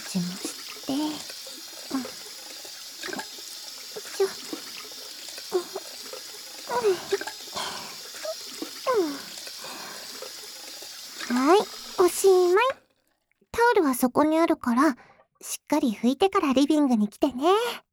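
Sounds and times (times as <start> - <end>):
running tap water: 0.0 - 13.4
speech: 0.1 - 1.1, 13.9 - 17.8.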